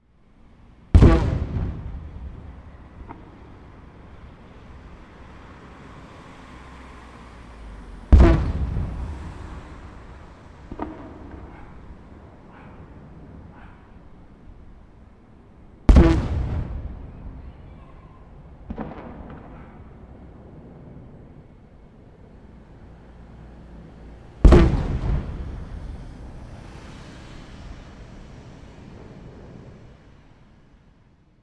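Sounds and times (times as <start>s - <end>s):
fireworks launching: 0.9s - 5.9s, 7.2s - 14.0s, 15.9s - 21.6s, 24.4s - 30.4s
fireworks echo: 0.9s - 6.5s, 7.1s - 31.0s.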